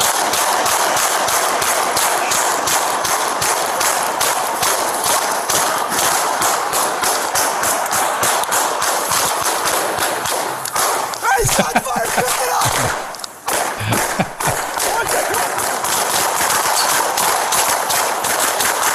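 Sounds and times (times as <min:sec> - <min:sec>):
gunfire from police officers shooting at a suspect: 0:00.0 - 0:18.9
laughter: 0:11.2 - 0:13.2, 0:13.8 - 0:15.6.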